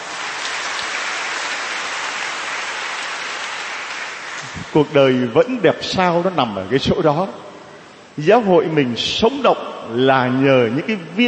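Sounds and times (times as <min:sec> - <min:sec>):
large audience applauding: 0:00.0 - 0:04.6
speech: 0:04.4 - 0:07.5, 0:08.2 - 0:11.2.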